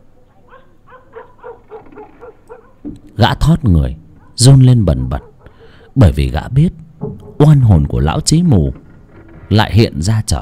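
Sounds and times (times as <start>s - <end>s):
dog barking at night outside a villa: 0.2s - 2.9s, 4.2s - 6.0s
speech: 3.2s - 5.3s, 6.0s - 6.8s, 7.4s - 8.8s, 9.5s - 10.4s.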